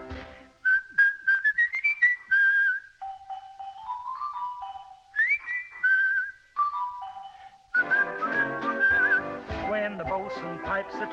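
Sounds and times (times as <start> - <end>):
fuller burst of music: 0.0 - 0.6, 3.0 - 5.4, 6.6 - 11.1
bosun's whistle piping a jaunty tune: 0.6 - 9.4.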